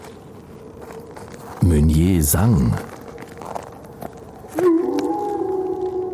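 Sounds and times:
speech: 1.6s - 2.9s
wolf howling: 4.5s - 6.1s.

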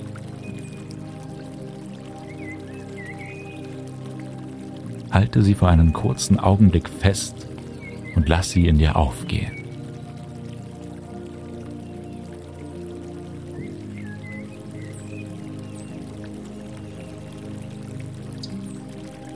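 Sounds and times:
gently trickling small stream: 0.0s - 19.3s
speech: 5.1s - 7.5s, 8.2s - 9.6s.

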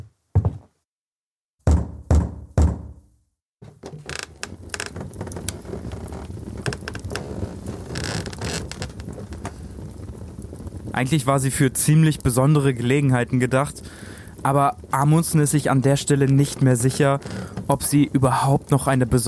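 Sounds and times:
knocking on a laboratory door: 0.4s - 0.7s, 1.6s - 3.0s
speech: 11.0s - 19.2s.

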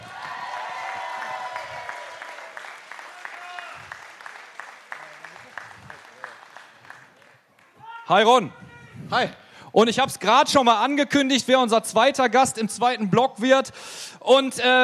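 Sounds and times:
audience applause welcoming a guest onto a stage: 0.0s - 7.8s
speech: 8.1s - 14.8s.

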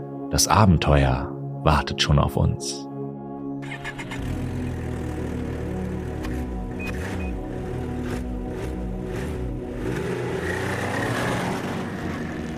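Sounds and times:
speech: 0.3s - 2.9s
snowmobile engine starting, revving and driving off: 3.6s - 12.5s.

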